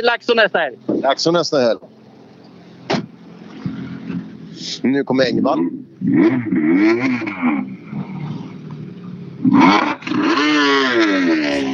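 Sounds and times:
speech: 0:00.0 - 0:01.9, 0:04.6 - 0:08.1, 0:09.4 - 0:11.7
Citroën rally car engine revving as the car approaches: 0:02.8 - 0:11.7.

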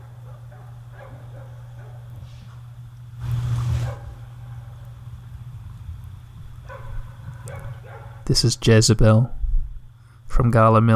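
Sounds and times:
dog barking: 0:00.0 - 0:02.2, 0:03.7 - 0:04.8, 0:06.6 - 0:08.3
steady low droning hum: 0:00.0 - 0:10.9
speech: 0:08.3 - 0:09.4, 0:10.4 - 0:10.9.

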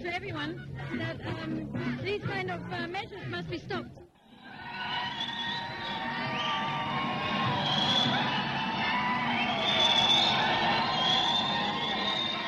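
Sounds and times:
speech: 0:00.0 - 0:04.2
large crowd screaming and cheering: 0:04.2 - 0:12.4.

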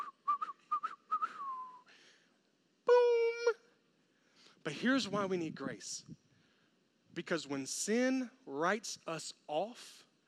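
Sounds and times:
person whistling a short tune: 0:00.0 - 0:01.9
speech: 0:04.7 - 0:06.2, 0:07.2 - 0:10.0.

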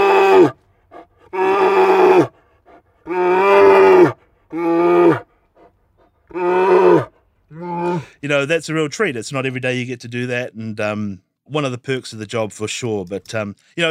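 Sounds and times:
voice imitating a grizzly bear roaring: 0:00.0 - 0:00.6, 0:01.3 - 0:02.3, 0:03.0 - 0:05.2, 0:06.3 - 0:08.2
speech: 0:08.2 - 0:13.9.

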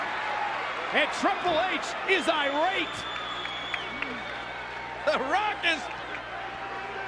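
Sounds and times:
large wrestling arena crowd applauding and cheering: 0:00.0 - 0:07.0
shouts: 0:00.0 - 0:07.0
speech: 0:00.9 - 0:03.2, 0:05.0 - 0:06.0
sharp claps: 0:03.0 - 0:04.4, 0:05.8 - 0:06.4.

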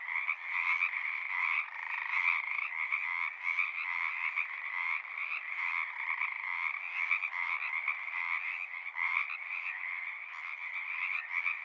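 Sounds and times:
chorus of Pacific tree frogs croaking at ponds in Seattle: 0:00.0 - 0:11.6.

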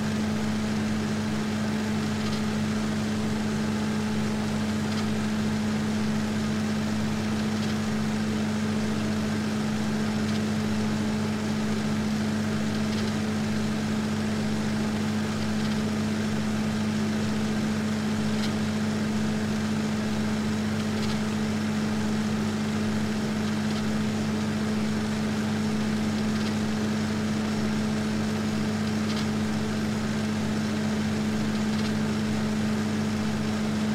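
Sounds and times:
customized Kinoton FP30 film projector running at a film screening: 0:00.0 - 0:33.9.

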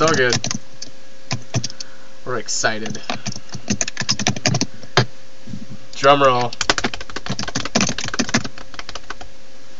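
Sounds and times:
speech: 0:00.0 - 0:00.6, 0:02.3 - 0:03.4, 0:06.0 - 0:06.6
typing on a computer keyboard: 0:00.0 - 0:00.6, 0:01.3 - 0:01.8, 0:02.8 - 0:04.7, 0:06.4 - 0:09.2.

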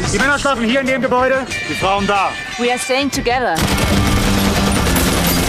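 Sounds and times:
speech: 0:00.1 - 0:04.0
rapid automatic gunfire in a film trailer: 0:03.6 - 0:05.4.

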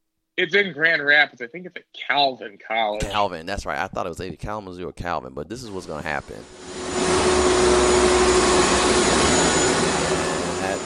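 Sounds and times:
speech: 0:00.4 - 0:07.3
vacuum cleaner roaring with a constant whine: 0:06.4 - 0:10.8.

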